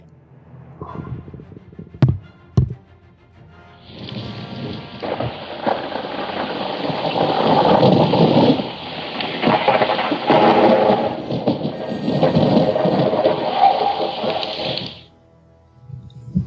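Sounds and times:
low rolling thunder rumbles: 3.8 - 15.1
steady rain hissing in a thunderstorm: 3.8 - 15.1.

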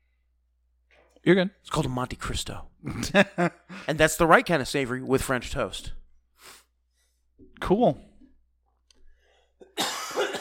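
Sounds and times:
speech: 1.2 - 6.6, 7.6 - 8.1
laughter: 2.8 - 3.9
single ordinary cough: 9.6 - 10.4.

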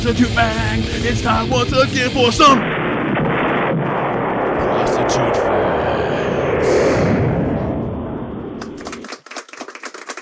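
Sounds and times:
speech: 0.0 - 2.8, 5.1 - 6.8
explosion sound effect with deep boom and rumbling roar: 2.3 - 8.9
sharp crackling pops: 2.6 - 5.2.

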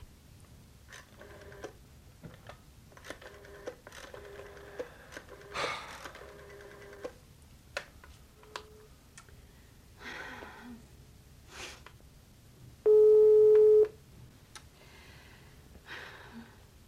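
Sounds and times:
breathy sounds: 4.6 - 6.4, 9.4 - 10.9, 14.8 - 16.7
faint short beep: 12.9 - 13.9
telephone ringback tone of an unanswered call: 12.9 - 13.9.

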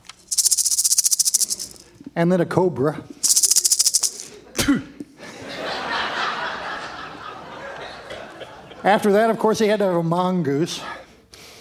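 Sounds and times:
man's voice imitating a rattlesnake rattle: 0.2 - 2.0, 3.2 - 4.3
speech: 2.2 - 3.4, 8.8 - 11.0
laughter: 4.2 - 9.6.

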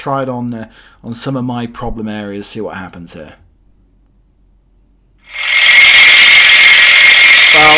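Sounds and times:
speech: 0.0 - 3.4
handheld electric massager buzzing: 5.3 - 7.7.

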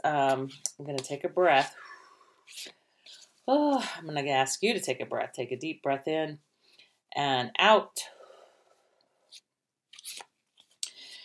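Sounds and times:
speech: 0.0 - 1.9, 2.5 - 6.5, 7.1 - 8.2
deck of cards being shuffled: 2.4 - 3.4, 9.3 - 10.8.

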